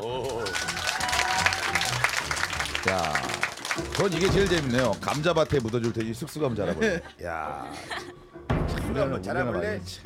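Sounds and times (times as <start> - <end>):
room full of people applauding: 0.0 - 6.6
speech: 4.0 - 8.2, 8.9 - 10.0
laughter: 6.1 - 8.2.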